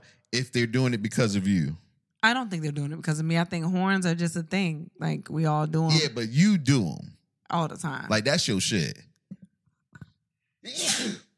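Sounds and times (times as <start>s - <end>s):
speech: 0.3s - 9.1s, 10.6s - 11.2s
loud sneeze: 10.7s - 11.3s.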